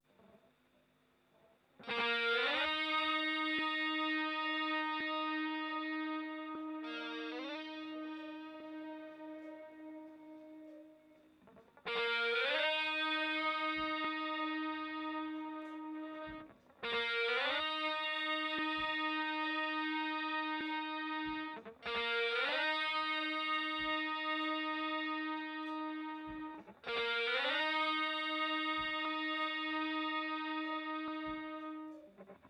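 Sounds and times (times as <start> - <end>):
guitar intro: 1.8 - 32.4.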